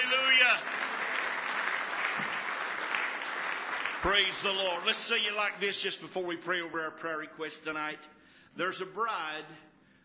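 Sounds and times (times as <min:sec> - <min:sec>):
congregation clapping hands in praise during a church service: 0:00.0 - 0:06.0
speech: 0:00.1 - 0:01.0, 0:04.0 - 0:09.7.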